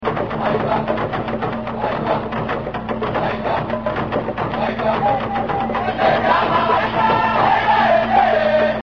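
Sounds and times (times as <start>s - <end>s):
African music: 0.0s - 8.8s.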